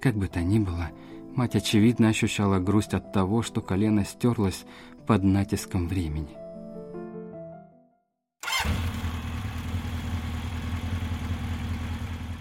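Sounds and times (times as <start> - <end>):
speech: 0.0 - 6.4
music: 0.0 - 8.2
motorcycle engine starting: 8.4 - 12.3.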